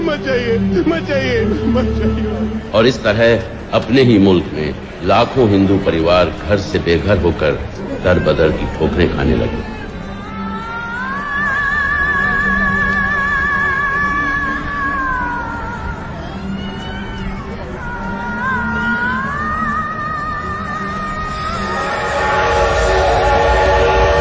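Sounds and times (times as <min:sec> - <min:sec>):
steady rail rumble: 0:00.0 - 0:24.1
speech: 0:00.1 - 0:09.8
train horn at a station: 0:21.5 - 0:24.1.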